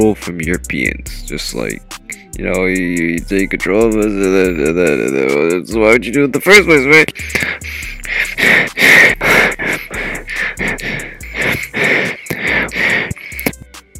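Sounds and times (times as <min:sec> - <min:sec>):
speech: 0:00.0 - 0:09.7
loud heavy breathing right up against a microphone: 0:07.0 - 0:13.6.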